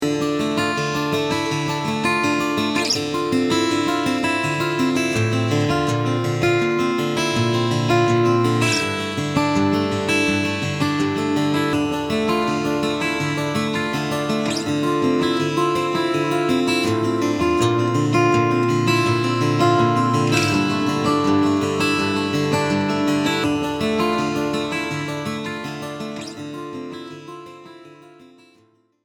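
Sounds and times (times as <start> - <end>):
fingerpicked guitar: 0.0 - 29.0.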